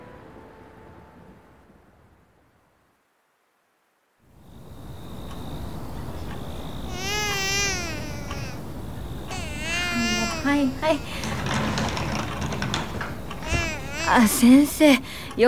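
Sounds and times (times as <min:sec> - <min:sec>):
noise: 0:00.0 - 0:15.4
baby crying: 0:06.8 - 0:14.9
speech: 0:10.6 - 0:11.2, 0:14.1 - 0:15.4.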